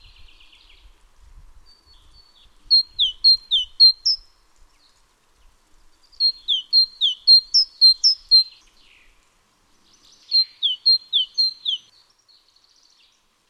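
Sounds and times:
great tit Parus major major singing ringing two-part phrases: 2.7s - 4.2s, 6.2s - 8.5s, 10.2s - 11.9s.

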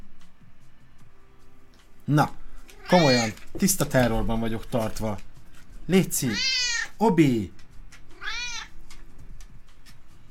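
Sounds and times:
speech: 2.1s - 5.3s, 5.9s - 7.6s
agitated cat meowing: 2.7s - 3.4s, 6.3s - 7.0s, 8.1s - 8.8s.

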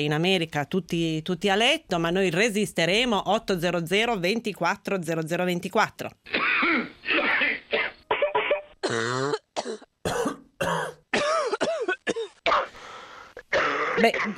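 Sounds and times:
speech: 0.0s - 6.9s, 14.0s - 14.3s
throat clearing from someone with flu: 6.3s - 11.6s
harsh chesty coughing from someone with flu: 6.3s - 12.8s, 13.4s - 14.3s.

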